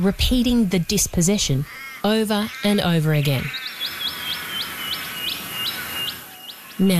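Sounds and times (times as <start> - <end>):
speech: 0.0 - 3.6, 6.8 - 6.9
welcome swallow calling in high thin chirps: 1.6 - 6.9.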